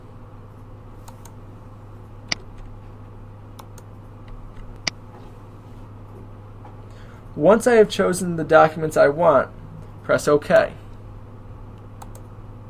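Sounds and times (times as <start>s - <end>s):
steady low electrical hum: 0.0s - 12.6s
computer mouse clicking: 1.0s - 1.4s, 3.6s - 3.9s, 11.8s - 12.3s
speech: 7.4s - 10.8s.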